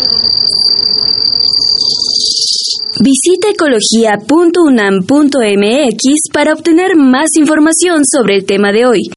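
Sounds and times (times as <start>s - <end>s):
speech: 0.0s - 0.2s, 3.0s - 9.1s
insects chirping: 0.0s - 4.3s.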